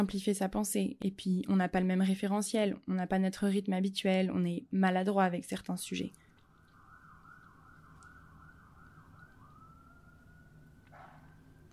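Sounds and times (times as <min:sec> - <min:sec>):
speech: 0:00.0 - 0:06.2
emergency vehicle siren passing: 0:06.3 - 0:11.7
constant low rumble of road traffic: 0:06.4 - 0:11.7.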